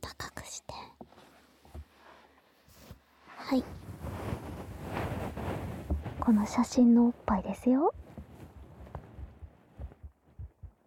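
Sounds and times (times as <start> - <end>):
speech: 3.5 - 3.8, 6.3 - 8.0
heartbeat: 7.9 - 10.8.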